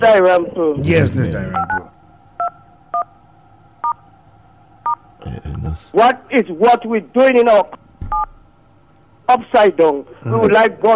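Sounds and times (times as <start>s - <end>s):
speech: 0.0s - 2.0s, 5.2s - 8.2s, 9.3s - 10.9s
faint hum: 0.0s - 10.9s
touch-tone telephone dialing beeps: 1.6s - 1.8s.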